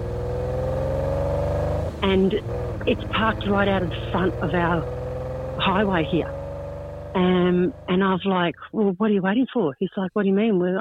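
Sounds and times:
Lamborghini engine revving with harmonic whine: 0.0 - 8.2
speech: 2.0 - 5.0, 5.6 - 6.4, 7.1 - 10.7.

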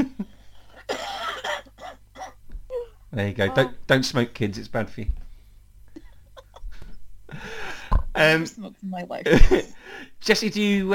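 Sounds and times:
person coughing with a phlegmy hacking cough: 0.8 - 2.4
speech: 3.2 - 5.2, 8.2 - 10.9.

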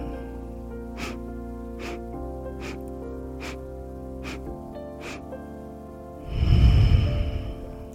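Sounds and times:
soft music: 0.0 - 7.9
long exhale close to the microphone: 1.0 - 1.2, 1.8 - 2.0, 2.6 - 2.8, 3.4 - 3.6, 4.2 - 5.3, 6.2 - 7.8
short sniffs of breath drawn in: 1.0 - 1.2, 1.8 - 2.0, 2.6 - 3.6, 4.2 - 5.3.

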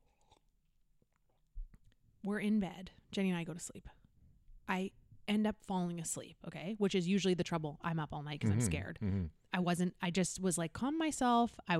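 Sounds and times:
person sipping a drink: 0.0 - 0.5
speech: 2.2 - 4.0, 4.7 - 11.7
person swallowing: 8.4 - 9.3.

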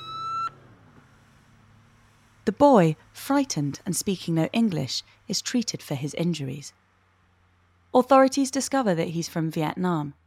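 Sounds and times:
ambulance siren arriving at the scene: 0.0 - 0.6
low ambulance engine rumble: 0.0 - 10.2
speech: 2.5 - 6.8, 7.9 - 10.2.

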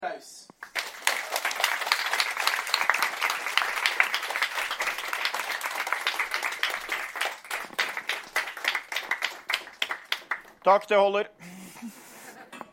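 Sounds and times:
speech: 0.2 - 0.4, 10.6 - 12.0
audience applause: 0.6 - 10.6.

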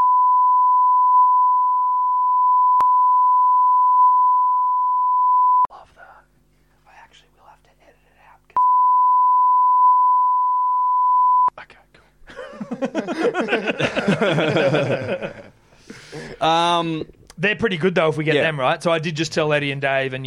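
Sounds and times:
censor beep tone: 0.0 - 5.7, 8.6 - 11.5
faint whispering: 5.7 - 8.6, 11.5 - 12.2
laughter: 12.3 - 15.6
speech: 14.1 - 15.4, 16.4 - 20.2.

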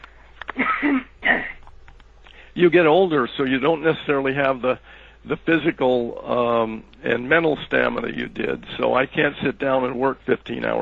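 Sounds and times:
person clearing throat: 0.6 - 1.6
speech: 2.6 - 10.7.

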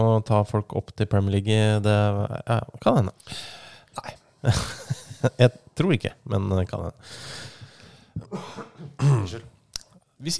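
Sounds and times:
speech: 0.0 - 7.5, 8.2 - 9.5, 10.2 - 10.3
person coughing: 8.2 - 9.4
throat clearing: 8.2 - 9.5.

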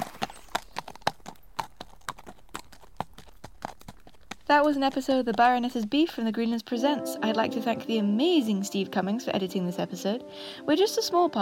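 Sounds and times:
horse hooves clip-clopping at a trot out of a courtyard: 0.0 - 7.0
speech: 4.5 - 11.3.

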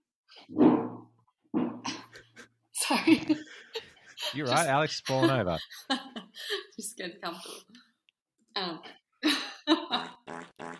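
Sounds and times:
speech: 0.5 - 0.7, 2.9 - 7.8, 8.6 - 9.0, 9.9 - 10.7
laughter: 2.2 - 6.6
fart sound effect from soundboard button: 10.2 - 10.7.

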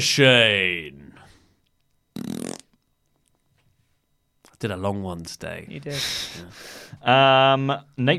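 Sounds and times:
speech: 0.0 - 1.0, 4.6 - 8.1
loud buzzy fart: 2.1 - 2.8.

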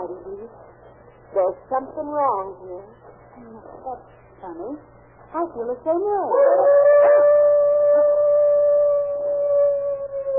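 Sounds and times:
speech: 0.1 - 7.3
dog howling: 6.2 - 10.3.

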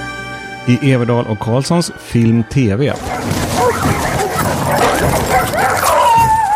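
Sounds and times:
speech: 0.6 - 3.9
dogs barking and whimpering: 2.9 - 6.5.

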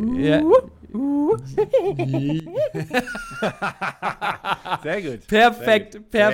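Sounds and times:
speech: 0.2 - 6.3
voice imitating a hyena's whooping laugh: 0.3 - 3.3.

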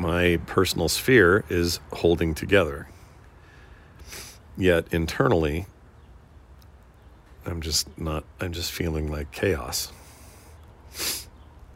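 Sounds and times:
speech: 0.0 - 3.0, 4.1 - 5.7, 7.4 - 10.0, 10.9 - 11.2
person sniffing from allergies: 4.0 - 4.4, 10.0 - 11.4.

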